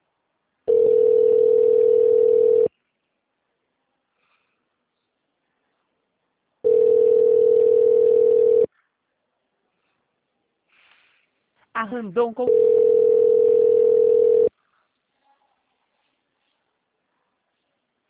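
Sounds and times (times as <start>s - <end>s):
telephone line tone as a call is being transferred: 0.7s - 2.7s, 6.6s - 8.7s, 12.5s - 14.5s
speech: 11.9s - 13.1s.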